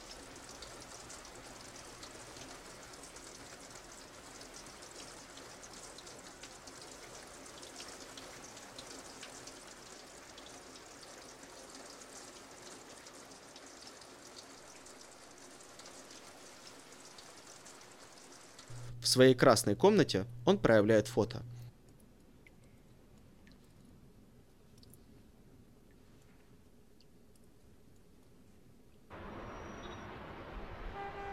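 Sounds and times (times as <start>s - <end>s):
heavy rain running down a window: 0.0s - 18.7s
speech: 19.1s - 21.5s.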